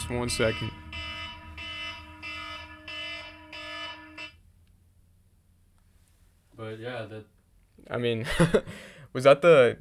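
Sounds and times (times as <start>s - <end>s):
electronic reminder alarm beeping: 0.0s - 4.4s
constant low hum: 0.0s - 5.8s
speech: 0.1s - 0.8s, 6.6s - 9.7s.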